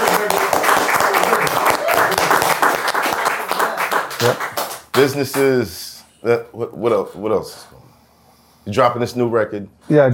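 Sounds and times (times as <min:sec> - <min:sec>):
audience applause: 0:00.0 - 0:05.4
speech: 0:05.0 - 0:07.8, 0:08.6 - 0:10.1.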